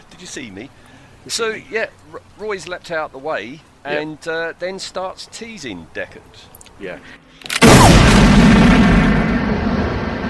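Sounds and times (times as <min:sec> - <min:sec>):
speech: 0:00.2 - 0:08.5
gunshot fired at an unarmed opponent in a film scene: 0:07.6 - 0:10.2.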